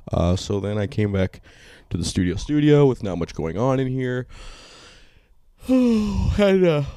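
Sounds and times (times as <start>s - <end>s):
speech: 0.1s - 4.8s, 5.6s - 6.9s
person yawning with a voiced open-mouthed groan: 5.6s - 6.9s.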